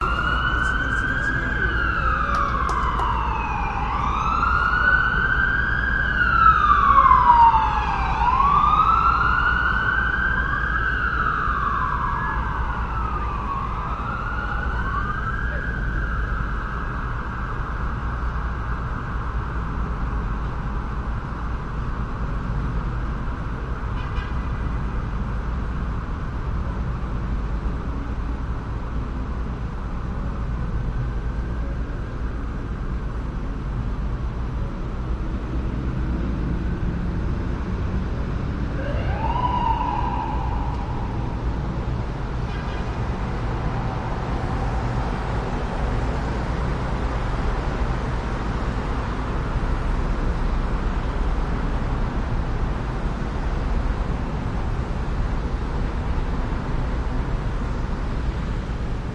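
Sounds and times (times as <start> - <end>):
car engines driving: 0.0 - 59.1
distant sirens at night on the Vancouver waterfront: 0.0 - 59.1
night traffic rumbling and roaring on the Vancouver waterfront: 0.0 - 59.1.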